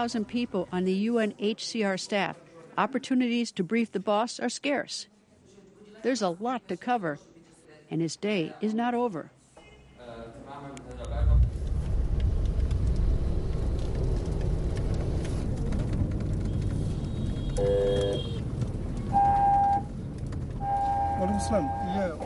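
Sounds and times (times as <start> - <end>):
speech: 0.0 - 5.1, 6.0 - 7.3, 7.9 - 9.4, 17.6 - 18.3, 21.2 - 22.2
car driving past a refugee camp: 11.0 - 22.2.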